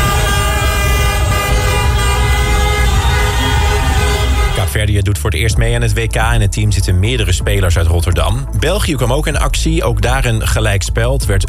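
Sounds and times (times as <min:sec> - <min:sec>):
celebratory car horns honking in a busy street: 0:00.0 - 0:04.8
traffic rumble: 0:00.0 - 0:04.9
speech: 0:05.2 - 0:11.4.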